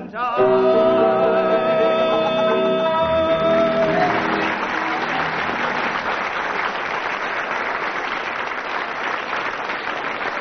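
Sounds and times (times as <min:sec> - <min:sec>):
sung tune: 0:00.0 - 0:05.4
audience applause for a sung round in a game contest: 0:01.3 - 0:10.3.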